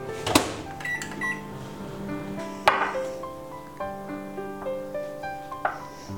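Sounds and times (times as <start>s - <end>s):
microwave oven humming while melting chocolate: 0.0s - 2.8s
soft tonal music: 0.0s - 6.1s.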